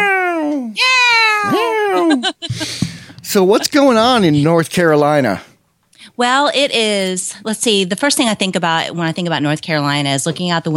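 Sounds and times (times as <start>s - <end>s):
human voice imitating cat meows: 0.0s - 2.2s
laughter: 1.5s - 4.4s
speech: 2.0s - 5.5s, 6.1s - 10.7s.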